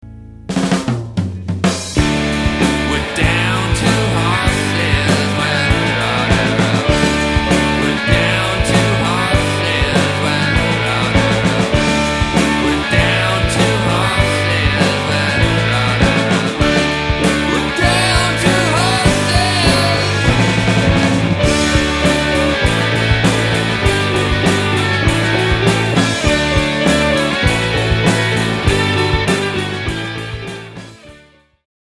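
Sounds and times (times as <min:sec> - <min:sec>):
rock drums: 0:00.1 - 0:31.6.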